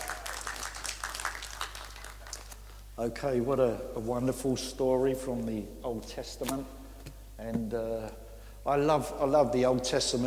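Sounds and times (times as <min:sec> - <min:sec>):
small group clapping for a reader after a Bible story: 0:00.0 - 0:02.6
low steady hum: 0:00.0 - 0:10.2
speech: 0:03.0 - 0:06.8, 0:07.4 - 0:10.2.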